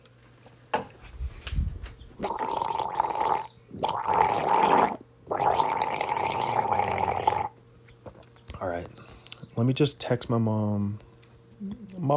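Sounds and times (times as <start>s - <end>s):
person gargling water: 2.2s - 7.6s
speech: 9.6s - 11.1s.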